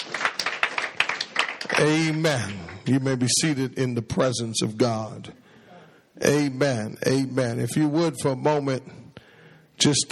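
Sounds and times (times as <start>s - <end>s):
crowd clapping hands in praise: 0.0s - 3.2s
speech: 1.8s - 5.4s, 6.2s - 9.0s, 9.8s - 10.1s.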